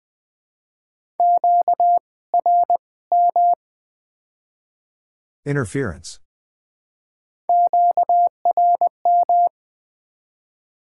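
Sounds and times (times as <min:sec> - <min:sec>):
Morse code beeps at 20 words per minute: 0:01.2 - 0:03.6, 0:07.5 - 0:09.5
speech: 0:05.4 - 0:06.2.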